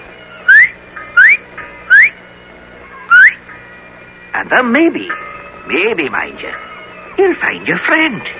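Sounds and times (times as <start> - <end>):
person whistling short rising notes as a signal: 0.5 - 2.2, 3.1 - 3.4
speech: 4.4 - 8.3.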